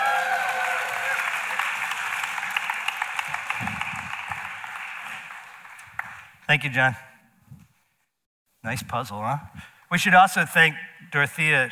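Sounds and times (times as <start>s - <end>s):
audience applause: 0.0s - 6.4s
speech: 6.5s - 7.1s, 8.6s - 11.7s.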